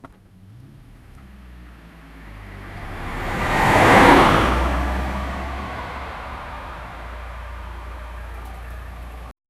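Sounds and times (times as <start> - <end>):
car crash: 2.3 - 9.3.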